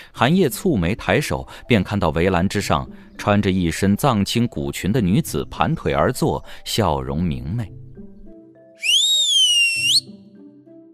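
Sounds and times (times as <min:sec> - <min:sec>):
speech: 0:00.2 - 0:07.9
person whistling: 0:08.8 - 0:10.1.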